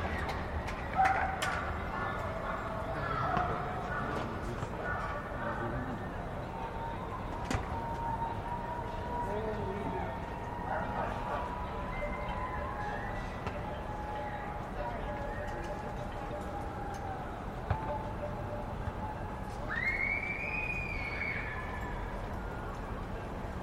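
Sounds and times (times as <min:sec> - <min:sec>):
dense wash of voices across the city: 0:00.0 - 0:23.6
New Yorkers cheering from their windows for essential workers: 0:06.6 - 0:17.6, 0:19.0 - 0:23.6
rising whistle or horn-like call: 0:19.7 - 0:22.0.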